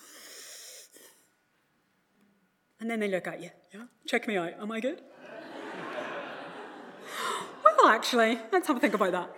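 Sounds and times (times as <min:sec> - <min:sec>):
person breathing deeply by lifting the shoulders: 0:00.0 - 0:01.3, 0:07.0 - 0:07.6
speech: 0:02.8 - 0:05.1, 0:07.8 - 0:09.3
laughter: 0:05.1 - 0:08.0.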